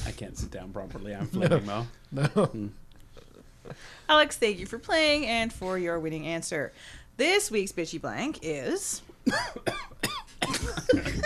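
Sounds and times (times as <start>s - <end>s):
speech: 0.1s - 2.8s, 3.6s - 11.2s
person coughing: 9.2s - 11.2s.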